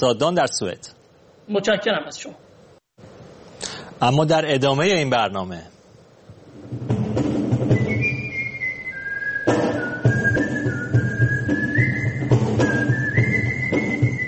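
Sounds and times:
speech: 0.0 - 2.4, 4.0 - 5.7
melodic whistling by performers at a whistlers' gathering in Japan: 7.6 - 14.2.

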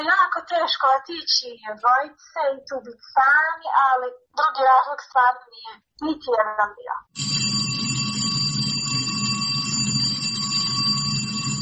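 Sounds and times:
speech: 0.0 - 7.5
school bell ringing: 7.2 - 11.6.

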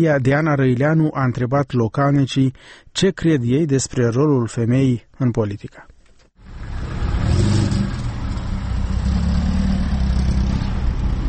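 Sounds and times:
speech: 0.0 - 5.9
outdoor traffic noise at a bus station: 6.4 - 11.2
vehicle engine revving at a bus station in Cimișlia: 6.4 - 11.2.

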